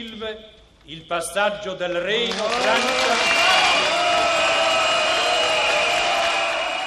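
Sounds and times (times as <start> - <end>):
speech: 0.1 - 4.4
large audience clapping: 2.2 - 6.8
large audience whistling: 3.0 - 6.8.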